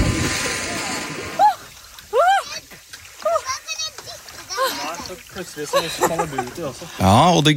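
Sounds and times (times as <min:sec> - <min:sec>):
splashing into cold water: 0:00.0 - 0:07.5
excited voices: 0:00.7 - 0:07.2
woman shrieking while splashing into cold water: 0:01.3 - 0:02.6
laughter: 0:04.5 - 0:07.0.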